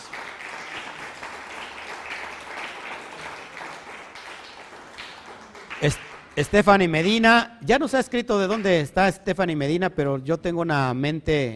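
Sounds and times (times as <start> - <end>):
crowd clapping: 0.0 - 7.2
speech: 5.8 - 11.5.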